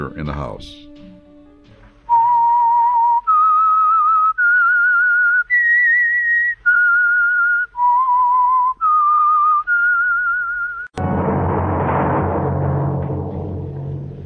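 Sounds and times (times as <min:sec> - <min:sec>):
speech: 0:00.0 - 0:00.9
lone whistled signal tune: 0:00.8 - 0:11.0
sudden loud crash of orchestral music: 0:11.0 - 0:14.2.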